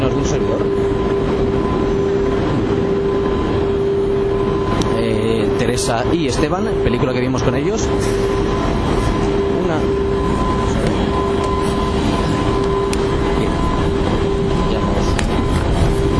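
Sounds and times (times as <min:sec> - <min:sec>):
moving train carriage rumbling roar: 0:00.0 - 0:16.1
steady tonal hum inside a moving train carriage: 0:00.0 - 0:16.1
speech: 0:00.1 - 0:00.8, 0:05.8 - 0:09.1.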